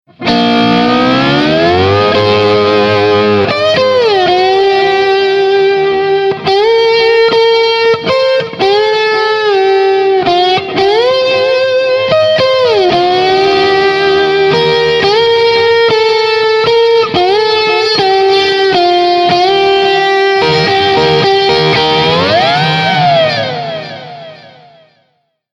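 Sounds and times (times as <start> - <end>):
JTM45 amplifier tone with treble boost and Tubescreamer: 0.0 - 25.3.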